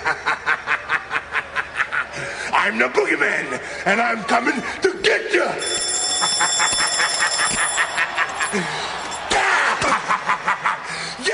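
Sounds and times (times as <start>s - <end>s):
laughter: 0.0s - 2.5s, 5.9s - 11.3s
speech: 2.6s - 5.8s, 8.5s - 8.8s
alarm clock ringing: 5.6s - 9.3s.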